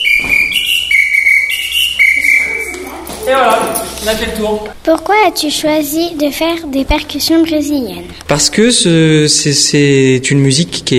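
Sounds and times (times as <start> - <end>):
bandleader's whistle blasts: 0.0 - 3.0
speech: 3.3 - 10.9.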